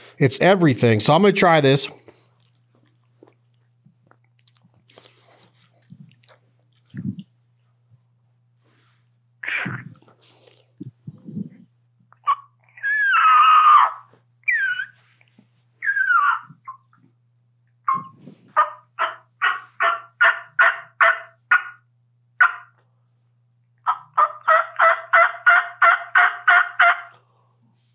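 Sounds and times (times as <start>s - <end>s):
speech: 0.2s - 2.0s
turkey yelps made on a game call: 12.2s - 15.0s, 15.8s - 16.9s, 17.9s - 22.8s, 23.8s - 27.2s.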